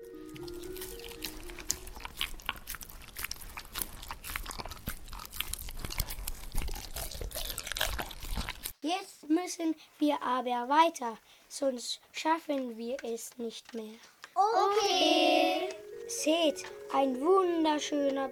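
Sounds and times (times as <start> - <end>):
crunchy chewing of stinging nettles: 0.0 - 8.8
speech: 8.9 - 15.4, 16.2 - 18.3.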